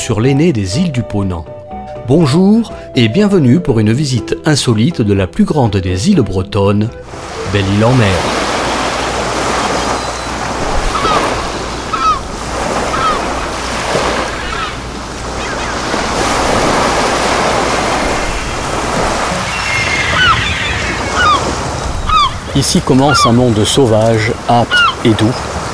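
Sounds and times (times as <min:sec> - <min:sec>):
speech: 0:00.0 - 0:08.4, 0:22.6 - 0:25.7
waves crashing against black rocks of a headland on Belle-Île in Brittany: 0:07.1 - 0:25.7
wind gusting against black rocks of a headland on Belle-Île in Brittany: 0:07.1 - 0:25.7.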